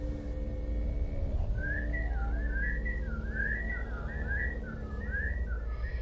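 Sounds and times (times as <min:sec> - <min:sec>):
steady low droning hum: 0:00.0 - 0:06.0
eerie wavering whistle in a slow wandering tune: 0:01.3 - 0:06.0.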